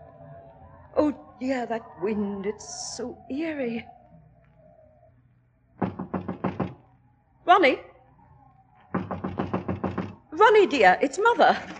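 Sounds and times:
speech: 1.0s - 4.0s, 7.5s - 7.9s, 10.4s - 11.7s
loud knocking on a locked door: 5.8s - 6.8s, 8.9s - 10.2s.

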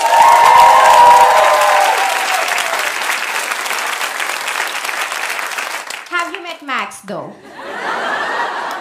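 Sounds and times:
audience cheering: 0.0s - 4.6s
large audience applause: 0.0s - 6.4s
speech: 7.0s - 8.0s
laughter: 7.4s - 8.7s.

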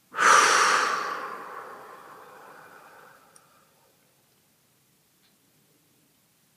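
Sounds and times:
deep breath: 0.1s - 3.6s.

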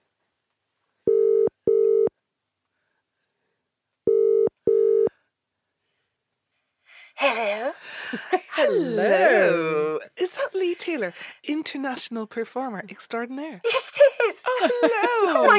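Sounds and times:
telephone ringback tone: 1.1s - 2.1s, 4.1s - 5.1s
speech: 7.3s - 15.5s
laughter: 7.9s - 9.7s, 13.7s - 15.5s.

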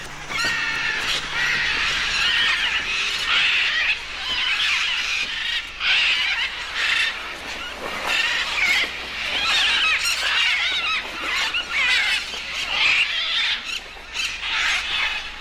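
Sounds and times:
large flock of macaws and parrots squawking at clay cliffs along a jungle river: 0.0s - 15.3s.

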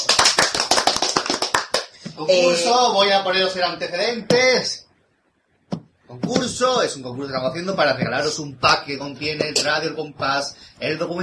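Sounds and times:
crisp hand clapping: 0.0s - 2.2s
speech: 2.2s - 4.8s, 6.1s - 11.2s.

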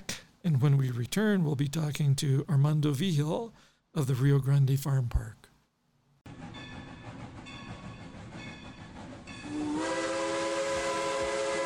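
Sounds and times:
speech: 0.4s - 5.5s
steam train whistle on a scenic railroad in the San Juan Mountains: 9.4s - 11.6s.

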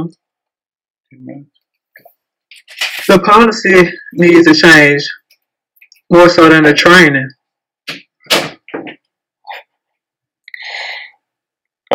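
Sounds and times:
speech: 0.0s - 0.2s, 1.1s - 2.1s, 3.1s - 5.2s, 6.1s - 8.4s
door closing with clunks, knocks and a rattling scrape: 8.2s - 9.0s.

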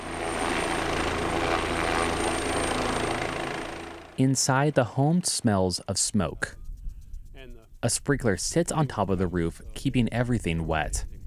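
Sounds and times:
helicopter rotors thumping while scooping water from a pond: 0.0s - 6.5s
speech: 4.2s - 6.6s, 7.8s - 11.1s.

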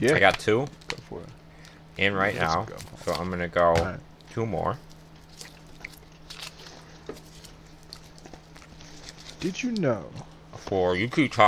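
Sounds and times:
speech: 0.0s - 0.8s, 2.0s - 4.9s, 9.4s - 11.4s
low steady hum: 0.0s - 11.4s
person chewing a large wad of gum: 4.8s - 9.4s.

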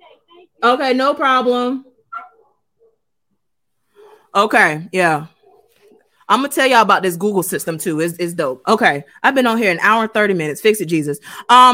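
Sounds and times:
speech: 0.6s - 1.9s, 4.4s - 5.4s, 6.3s - 11.7s
puppy whimpering yelps: 2.1s - 2.5s
puppy sharp high bark: 2.1s - 3.0s, 5.4s - 6.1s.

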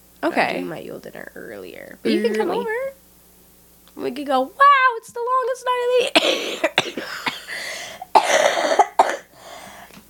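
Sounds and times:
speech: 0.2s - 3.0s, 4.0s - 7.3s
person coughing: 6.2s - 9.4s.

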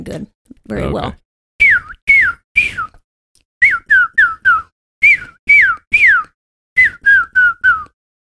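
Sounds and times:
speech: 0.0s - 1.2s
person whistling imitations of chickadee and cardinal calls: 1.6s - 3.0s, 3.6s - 8.0s.

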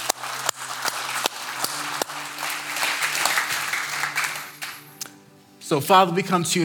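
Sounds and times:
audience clapping at a church worship service: 0.0s - 5.1s
speech: 5.7s - 6.6s.

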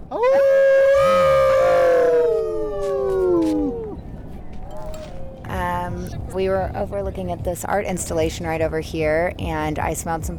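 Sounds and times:
faint outdoor noise: 0.0s - 10.3s
crowd of people howling toward the setting sun: 0.2s - 4.1s
speech: 6.6s - 10.3s.

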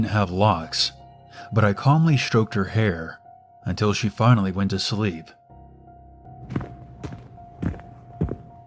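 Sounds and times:
speech: 0.0s - 5.4s, 6.5s - 6.7s
heavy footsteps outside a door: 6.4s - 8.6s.

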